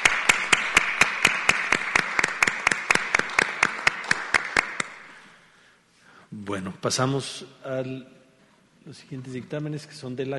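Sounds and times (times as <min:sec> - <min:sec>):
applause from a group: 0:00.0 - 0:05.0
one pair of hands clapping loudly in a steady rhythm: 0:00.0 - 0:05.3
speech: 0:06.5 - 0:08.2, 0:08.8 - 0:10.3.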